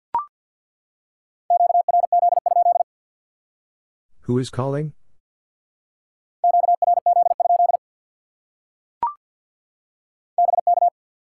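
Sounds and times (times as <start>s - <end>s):
Morse code beeps spelling a word: 1.5s - 2.8s, 6.4s - 7.8s, 10.4s - 10.9s
speech: 4.3s - 5.0s.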